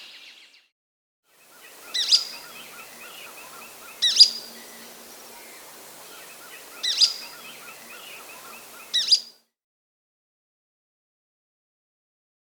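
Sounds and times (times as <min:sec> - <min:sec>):
Golden-crowned flycatcher Myiodynastes chrysocephalus calling in the Andes: 0:01.4 - 0:09.3.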